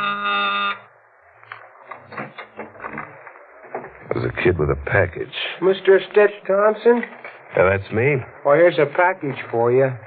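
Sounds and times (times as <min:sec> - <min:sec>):
loud harsh electric door buzzer: 0:00.0 - 0:00.9
voices talking: 0:03.9 - 0:10.0
speech: 0:04.2 - 0:10.0.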